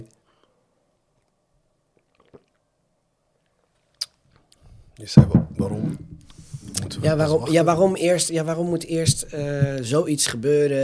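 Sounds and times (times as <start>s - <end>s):
person swallowing water: 2.0s - 2.6s
person sipping water: 2.0s - 2.7s
speech: 5.0s - 6.2s, 6.8s - 10.8s.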